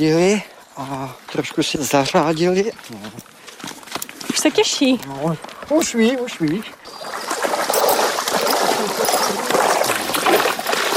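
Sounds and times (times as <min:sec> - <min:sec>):
speech: 0:00.0 - 0:03.4, 0:04.4 - 0:07.0
water spray from a hose hissing and splattering onto a horse: 0:06.8 - 0:10.9.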